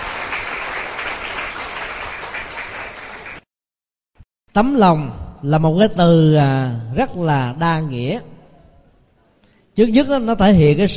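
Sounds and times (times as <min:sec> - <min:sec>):
group of people applauding: 0:00.0 - 0:03.4
speech: 0:04.6 - 0:08.3, 0:09.8 - 0:10.9.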